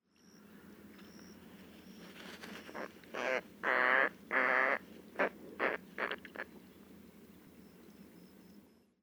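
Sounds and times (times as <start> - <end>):
Roseate Spoonbill Platalea ajaja calling: 0.5 - 8.4.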